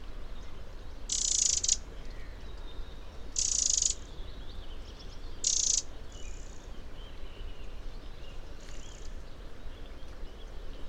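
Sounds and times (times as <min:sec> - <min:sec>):
steady low background noise: 0:00.0 - 0:10.8
Eurasian wren loud rasping churr calls: 0:01.1 - 0:01.8, 0:03.4 - 0:04.1, 0:05.4 - 0:06.6
fainter buzzy Eurasian wren notes: 0:01.1 - 0:01.8.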